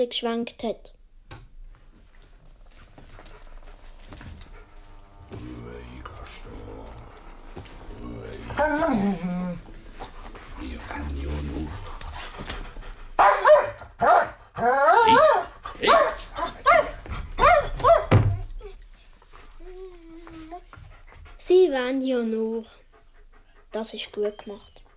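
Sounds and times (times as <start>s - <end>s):
speech: 0.0s - 1.0s, 21.7s - 22.8s, 23.8s - 24.7s
dog whimpering and whining while begging: 3.2s - 13.0s, 17.4s - 20.7s, 24.0s - 24.9s
dog barking while begging: 13.2s - 18.2s.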